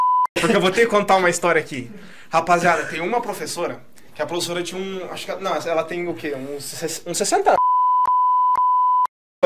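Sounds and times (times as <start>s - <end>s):
high-pitched censor beep over a spoken name: 0.0s - 0.3s, 7.6s - 9.1s
speech: 0.4s - 7.6s.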